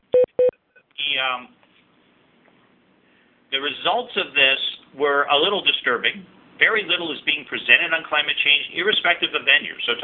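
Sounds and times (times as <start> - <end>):
short beeps from a device with a low battery: 0.0 - 0.6
speech: 1.2 - 1.6, 3.5 - 10.0.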